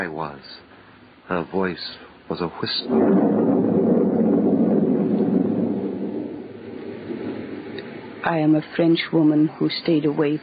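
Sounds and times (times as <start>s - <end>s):
speech: 0.0s - 0.7s, 1.3s - 3.4s, 8.2s - 10.4s
heavy rumble of wind: 0.0s - 10.4s
thunder rumbling: 2.8s - 8.6s.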